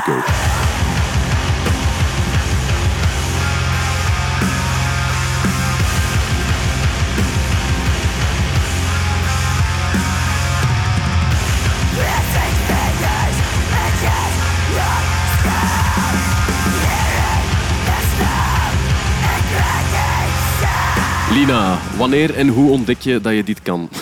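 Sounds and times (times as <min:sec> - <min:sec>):
harsh screamed vocal: 0:00.0 - 0:03.2, 0:11.6 - 0:23.1
heavy metal music with pounding drums and distorted guitars: 0:00.0 - 0:23.8
speech: 0:21.4 - 0:23.9.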